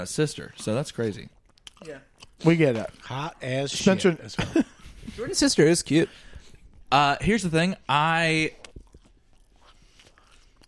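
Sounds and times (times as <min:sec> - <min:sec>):
speech: 0:00.0 - 0:06.3, 0:06.9 - 0:08.6
loud chewing into microphone: 0:00.4 - 0:03.7, 0:08.5 - 0:10.6.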